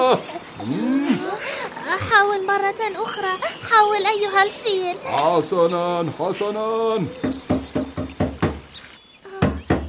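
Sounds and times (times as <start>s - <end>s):
speech: 0.1s - 0.9s, 2.0s - 7.5s
firm knocking on a door: 7.2s - 8.7s, 9.4s - 9.8s.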